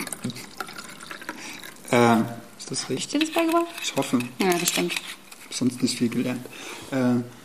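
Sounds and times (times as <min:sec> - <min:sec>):
drink pouring into a glass: 0:00.0 - 0:02.7
speech: 0:01.9 - 0:07.4.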